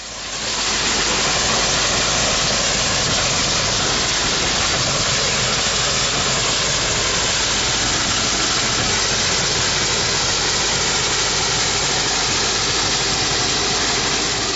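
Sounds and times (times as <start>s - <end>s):
steam engine running at full speed: 0.0s - 14.5s.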